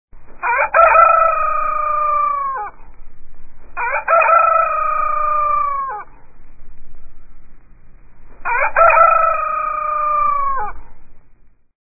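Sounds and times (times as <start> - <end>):
rooster crowing: 0.4 - 3.0, 3.7 - 6.6, 8.2 - 11.1.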